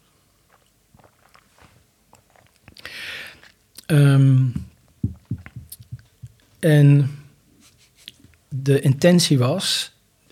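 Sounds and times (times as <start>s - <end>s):
person sipping a drink: 0.4s - 5.9s
airy slurp of a drink: 0.5s - 3.6s
speech: 3.9s - 4.6s, 6.6s - 7.2s, 8.7s - 9.9s.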